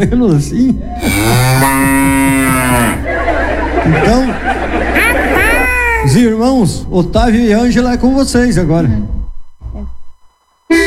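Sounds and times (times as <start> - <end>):
speech: 0.0 - 5.0, 6.0 - 9.2
cow mooing: 1.0 - 3.1
laughter: 1.8 - 6.2.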